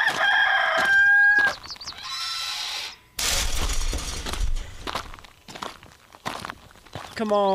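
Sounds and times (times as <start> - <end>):
rooster crowing: 0.0 - 1.6
footsteps: 0.0 - 1.8, 3.2 - 7.5
speech: 7.2 - 7.5.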